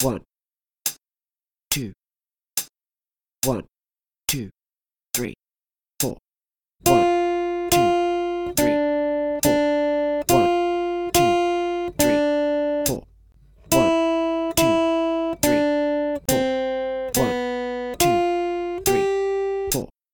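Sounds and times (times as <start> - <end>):
three guitar strings played: 6.8 - 19.9.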